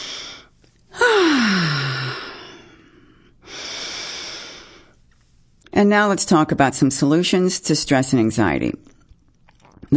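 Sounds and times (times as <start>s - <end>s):
person taking deep breaths: 0.0s - 5.0s
speech: 5.8s - 8.9s.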